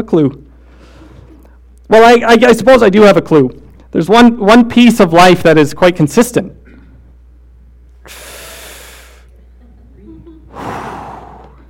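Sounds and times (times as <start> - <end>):
speech: 0.0 - 0.4, 1.9 - 6.6
deep audible breathing close to the microphone: 8.0 - 9.3, 10.5 - 11.6.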